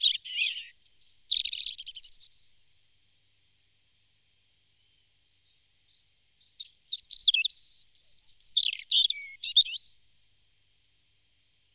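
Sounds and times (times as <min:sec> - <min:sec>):
European robin singing trills and high whistles: 0:00.0 - 0:02.6, 0:04.8 - 0:10.1.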